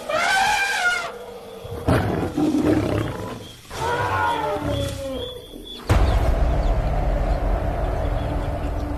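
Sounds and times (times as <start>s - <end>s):
lions roaring and snarling during night attack: 0.0s - 5.6s
rumbling commotion: 5.9s - 8.9s.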